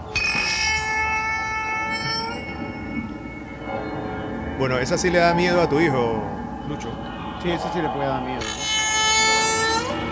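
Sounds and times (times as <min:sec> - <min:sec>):
eerie door creaking: 0:00.1 - 0:03.2, 0:08.4 - 0:10.1
speech: 0:04.6 - 0:08.7.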